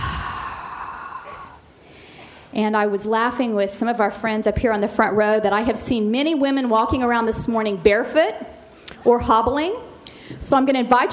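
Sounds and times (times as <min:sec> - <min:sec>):
deep exhale through the mouth during a guided breathing exercise: 0:00.0 - 0:02.5
speech: 0:02.5 - 0:11.1.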